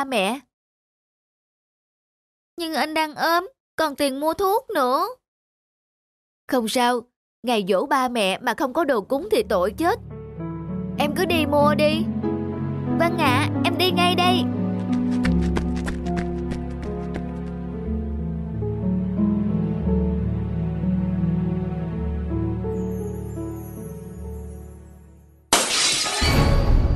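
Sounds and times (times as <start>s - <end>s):
speech: 0.0s - 0.5s, 2.6s - 5.2s, 6.5s - 10.1s, 11.0s - 12.3s, 13.0s - 14.6s
soft sustained music: 8.8s - 25.4s
clay piggy bank smashing and shattering: 25.5s - 26.8s.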